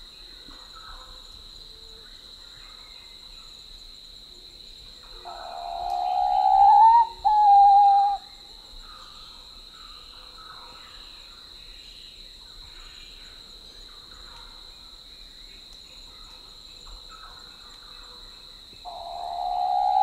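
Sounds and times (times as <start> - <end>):
faint background sounds: 0.0 - 20.0
Papuan pitta whistling in Papua New Guinea: 5.3 - 8.2, 18.9 - 20.0.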